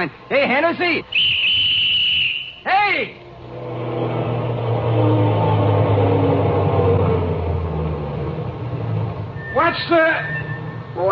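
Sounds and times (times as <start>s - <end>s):
speech: 0.0s - 1.4s, 2.6s - 3.2s, 9.8s - 10.3s
heavy garbage truck diesel engine rumbling as it pulls in: 3.2s - 11.1s.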